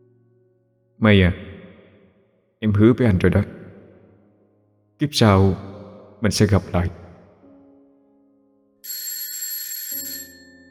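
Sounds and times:
speech: 0:01.0 - 0:01.5, 0:02.6 - 0:03.6, 0:05.0 - 0:07.0
alarm clock ringing in the morning: 0:08.8 - 0:10.6.

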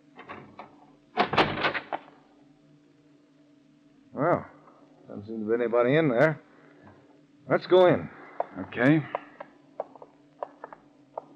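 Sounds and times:
shack door clicks and clunks: 0:00.2 - 0:02.1
speech: 0:05.3 - 0:06.5, 0:07.5 - 0:09.2.

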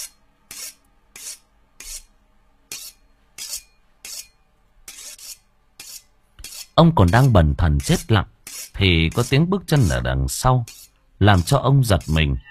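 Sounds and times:
knife being sharpened with rasping strokes: 0:00.0 - 0:02.1, 0:02.7 - 0:09.4, 0:10.6 - 0:12.2
speech: 0:06.8 - 0:12.4.

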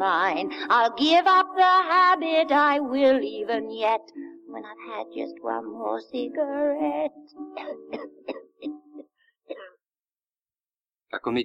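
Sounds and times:
speech: 0:00.0 - 0:08.3, 0:11.1 - 0:11.4
woman with a smoker's cough coughing harshly: 0:07.6 - 0:09.9.

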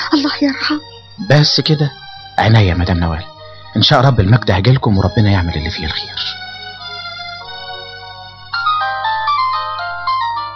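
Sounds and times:
speech: 0:00.1 - 0:06.4
mobile phone ringtone playing a melodic electronic tune: 0:06.4 - 0:10.5.

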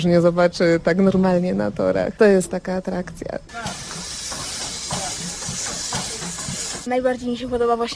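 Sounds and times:
speech: 0:00.0 - 0:03.8, 0:06.8 - 0:07.9
steam locomotive chuffing while pulling old railway carriages: 0:03.5 - 0:06.9.

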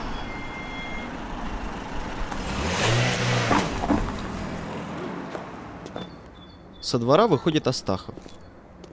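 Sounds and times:
car engine driving down a street: 0:00.0 - 0:06.0
speech: 0:06.9 - 0:08.4.

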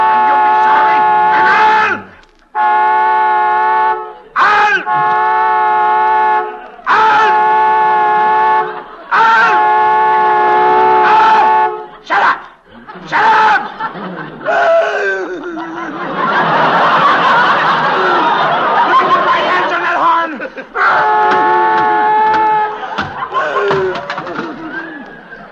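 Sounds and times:
laughter: 0:00.0 - 0:02.2, 0:03.9 - 0:25.5
car horn blaring from an electrical short caused by a crash: 0:00.0 - 0:12.1, 0:20.9 - 0:23.4.

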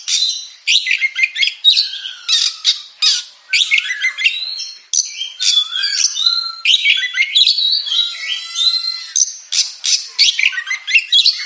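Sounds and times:
Oriental magpie-robin song: 0:00.0 - 0:11.4.

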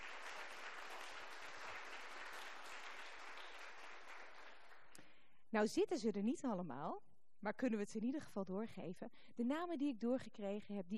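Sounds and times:
crowd applauding in a church: 0:00.0 - 0:05.0
speech: 0:05.5 - 0:10.9.

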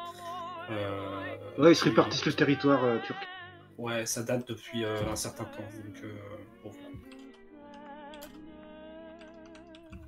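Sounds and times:
sustained tonal background: 0:00.0 - 0:10.0
speech: 0:00.7 - 0:07.0
computer keyboard typing: 0:07.0 - 0:08.4, 0:09.2 - 0:10.0.

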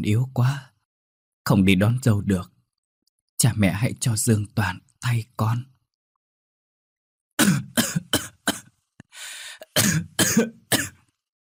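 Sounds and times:
speech: 0:00.0 - 0:00.7, 0:01.5 - 0:02.5, 0:03.4 - 0:05.7, 0:10.3 - 0:10.6
gravely ill young man coughing: 0:07.4 - 0:08.7, 0:09.6 - 0:11.1.

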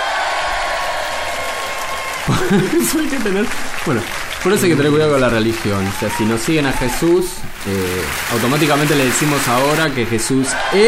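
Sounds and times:
applause: 0:00.0 - 0:10.8
laughter: 0:02.0 - 0:06.4
speech: 0:02.3 - 0:10.8.

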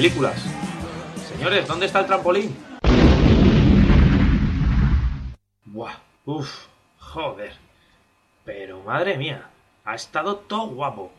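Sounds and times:
speech: 0:00.0 - 0:00.6, 0:01.4 - 0:02.7, 0:05.8 - 0:07.6, 0:08.5 - 0:11.1
explosion near an armoured vault: 0:02.8 - 0:05.4.

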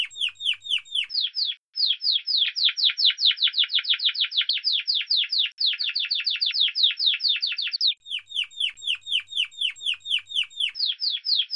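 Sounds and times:
Timbrado Español breed canary song with trills and ticking notes: 0:00.0 - 0:11.5.

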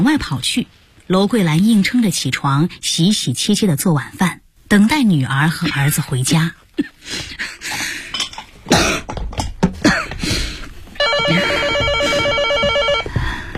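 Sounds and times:
speech: 0:00.0 - 0:08.0
person clearing throat: 0:08.7 - 0:09.2, 0:09.8 - 0:10.2
person coughing: 0:08.7 - 0:09.2, 0:09.8 - 0:10.2
telephone ringing with an electronic trill for an incoming call: 0:11.0 - 0:13.2.

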